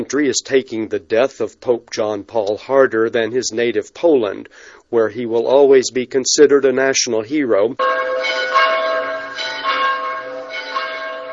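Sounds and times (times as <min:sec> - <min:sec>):
speech: 0:00.0 - 0:08.6
church bells tolling in Poland for the death of a pope: 0:07.8 - 0:11.3.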